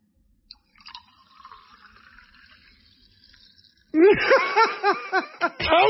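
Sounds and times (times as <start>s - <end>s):
drink pouring into a glass: 0.5s - 4.0s
laughter: 4.0s - 5.8s
speech: 4.0s - 5.8s.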